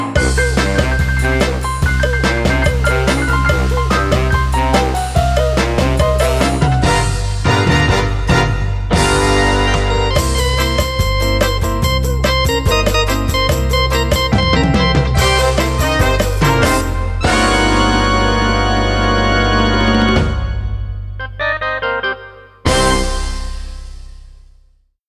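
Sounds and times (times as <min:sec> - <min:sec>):
Lowrey organ music: 0:00.2 - 0:24.1.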